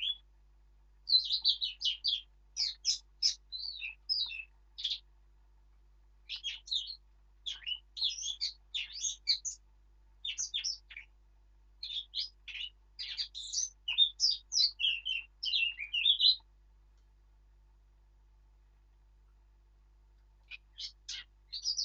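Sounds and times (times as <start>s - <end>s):
Eurasian blackcap Sylvia atricapilla singing warbled phrases: 0.0s - 0.2s, 1.1s - 5.1s, 6.2s - 9.6s, 10.2s - 11.1s, 11.8s - 16.5s, 20.4s - 21.8s.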